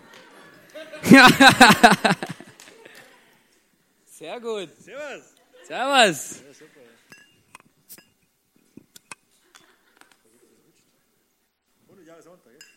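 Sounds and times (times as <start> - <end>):
laughter: 0.0 - 3.1
speech: 1.1 - 2.3, 4.2 - 7.2
beer glasses clinking in a toast: 7.1 - 8.3, 12.6 - 12.7.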